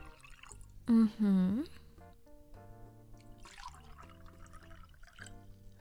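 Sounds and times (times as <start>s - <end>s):
white wine poured into glasses: 0.0s - 0.8s, 3.2s - 5.7s.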